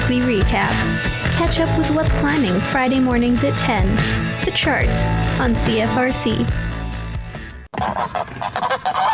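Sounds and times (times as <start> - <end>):
speech: 0.1 - 6.7
flock of geese honking: 7.7 - 9.1.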